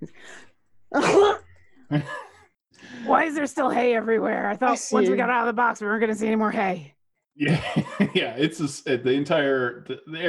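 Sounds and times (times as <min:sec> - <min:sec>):
voice performing a loud sneeze: 0:01.0 - 0:02.3
speech: 0:01.9 - 0:02.2, 0:03.2 - 0:10.2
laughter: 0:07.4 - 0:08.9.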